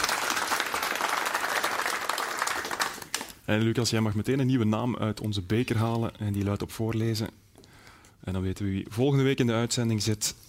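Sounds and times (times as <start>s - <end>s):
audience applause: 0.0s - 3.4s
speech: 3.5s - 7.4s, 8.2s - 10.4s.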